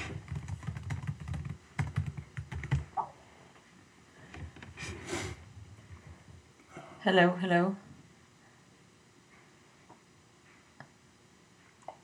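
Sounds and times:
typing on a computer keyboard: 0.1s - 2.9s
speech: 7.0s - 7.8s.

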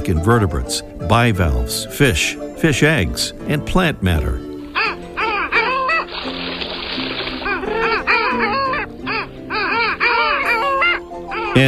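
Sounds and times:
speech: 0.1s - 4.5s
Long-tailed ducks Clangula hyemalis honking in a noisy chorus: 4.5s - 11.6s.

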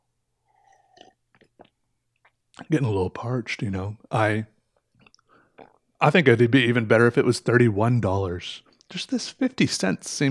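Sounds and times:
slurping sip of hot coffee: 0.5s - 1.8s
soft gulping swallows: 0.5s - 2.7s, 4.8s - 6.0s
speech: 2.6s - 4.6s, 6.0s - 10.2s.

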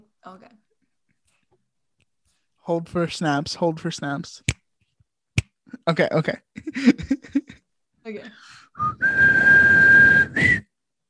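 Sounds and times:
speech: 0.2s - 0.7s, 2.6s - 4.5s, 5.8s - 7.4s, 8.1s - 10.6s
laughter: 6.5s - 7.6s
breathy failed attempt at whistling: 8.6s - 10.8s.

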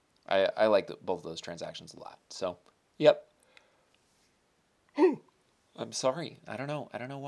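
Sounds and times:
speech: 0.3s - 3.3s, 5.8s - 7.2s
person yawning: 5.0s - 5.3s.

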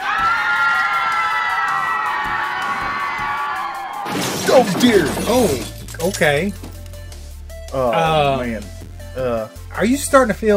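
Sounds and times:
crowd of children on a roller coaster shrieking and shouting: 0.0s - 5.4s
speech: 4.2s - 6.6s, 7.7s - 10.5s.

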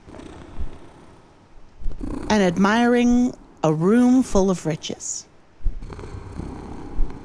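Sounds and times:
winged creature with a human face purring: 0.0s - 3.6s, 5.8s - 7.2s
speech: 2.3s - 5.3s.

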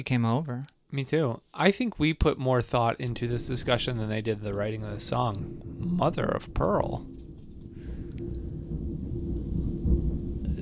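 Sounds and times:
speech: 0.0s - 7.1s
faint rain-like hiss: 0.2s - 10.6s
long continuous low rumble of thunder: 2.9s - 10.6s.

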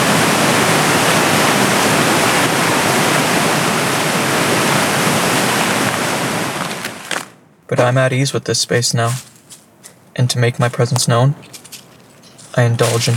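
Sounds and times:
roaring river water crashing: 0.0s - 7.4s
speech: 7.8s - 9.3s, 10.2s - 11.6s, 12.6s - 13.1s.

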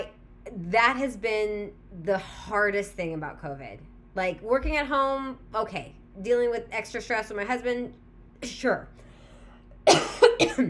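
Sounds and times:
speech: 0.7s - 9.0s, 9.8s - 10.6s
person coughing: 9.9s - 10.6s.

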